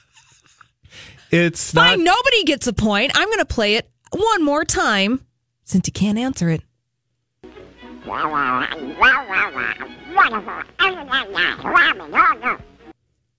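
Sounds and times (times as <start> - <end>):
speech: 1.3 - 6.7, 8.1 - 12.7
cartoon duck's raspy quacking voice babbling: 8.0 - 12.8.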